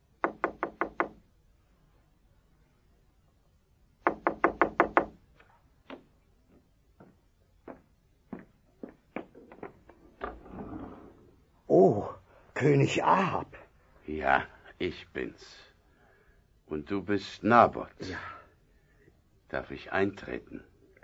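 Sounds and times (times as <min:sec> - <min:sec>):
knuckles knocking on a wooden door: 0:00.2 - 0:01.2, 0:04.1 - 0:05.2, 0:07.0 - 0:10.3
speech: 0:11.8 - 0:15.7, 0:16.7 - 0:18.4, 0:19.5 - 0:20.7.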